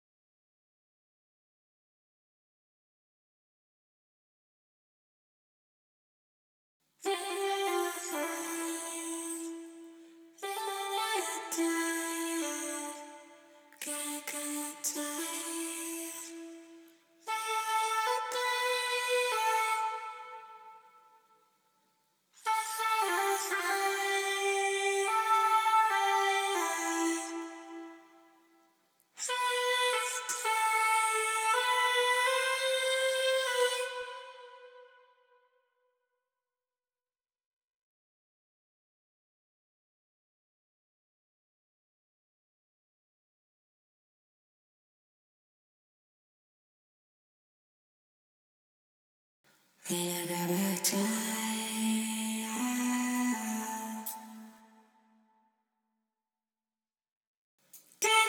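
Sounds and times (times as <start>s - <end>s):
voice: 7.1s - 9.7s, 10.4s - 13.2s, 13.8s - 16.6s, 17.3s - 20.2s, 22.4s - 27.4s, 29.2s - 34.2s, 49.9s - 54.6s, 58.0s - 58.2s.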